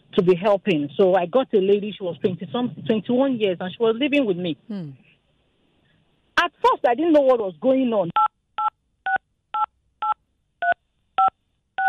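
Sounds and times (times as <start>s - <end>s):
speech: 0.2s - 5.0s, 6.4s - 8.2s
phone keypad touch-tones from accidental dialing with a cheek: 8.2s - 11.8s.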